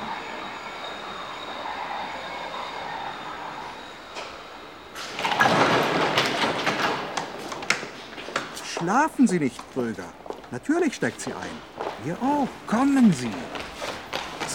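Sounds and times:
metallic squeals of a train: 0.0 - 6.2
rattling, hissing rail noise: 0.0 - 14.5
train arriving: 0.0 - 14.5
speech: 8.9 - 13.6.

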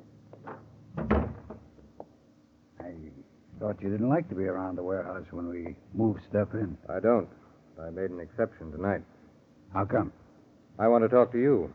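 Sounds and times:
faint knocks and rattles: 0.3 - 2.2
door swinging shut with a solid thud: 0.4 - 1.8
speech: 3.6 - 10.2, 10.8 - 11.7.

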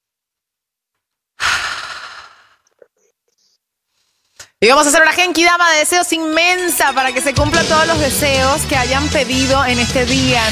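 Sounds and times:
deep exhale during a shoulder-relaxing breathing exercise: 1.4 - 2.7
faint breath sounds: 1.4 - 2.8
speech: 4.6 - 10.5.

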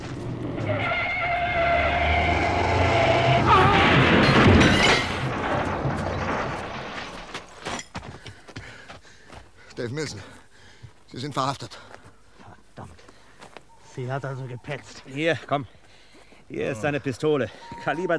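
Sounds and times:
speeding car engine roaring: 0.0 - 6.5
car tires skidding: 0.0 - 7.4
car crashing into another car: 0.6 - 7.7
rattles and knocks after a car crash: 3.7 - 8.3
speech: 9.9 - 10.4, 11.1 - 11.9, 14.0 - 15.8, 16.5 - 18.1.

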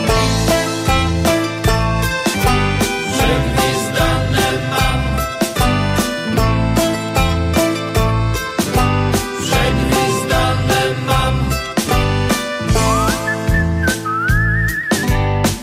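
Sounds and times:
full band playing with a steady punchy beat and sustained chords: 0.0 - 15.6
person whistling a tune: 12.7 - 15.2.

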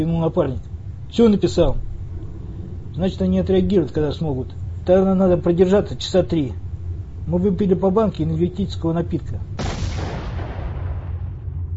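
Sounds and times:
speech: 0.0 - 1.9, 3.0 - 6.6, 7.2 - 9.6
distant explosion of a tripwire booby trap left by a door: 9.6 - 11.7.

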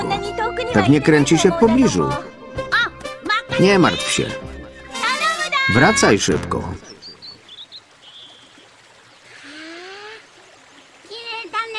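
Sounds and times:
speech: 0.1 - 2.4, 3.6 - 4.5, 5.7 - 6.9
cartoon bird chirping and trilling: 3.8 - 9.6.

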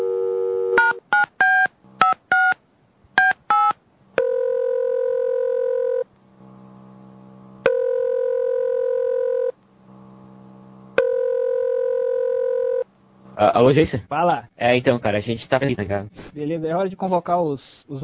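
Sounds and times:
long steady telephone tones: 0.0 - 2.6, 3.2 - 6.1, 7.6 - 9.6, 11.0 - 12.9
telephone number dialed on a keypad: 0.8 - 2.6
speech: 13.4 - 18.0.

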